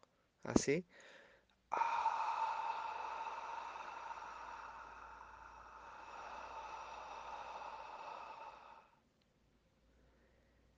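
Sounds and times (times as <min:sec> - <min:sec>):
speech: 0:00.4 - 0:01.9
slow breath exhaled through the mouth in a breathing exercise: 0:01.0 - 0:09.1.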